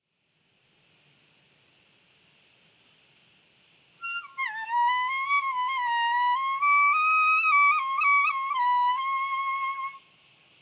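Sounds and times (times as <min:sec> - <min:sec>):
cricket chorus trilling: 0:00.9 - 0:10.6.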